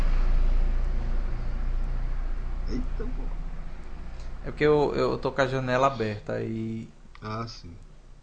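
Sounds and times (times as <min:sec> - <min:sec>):
car passing outside window with engine rumble and road noise: 0:00.0 - 0:06.3
speech: 0:04.4 - 0:07.9.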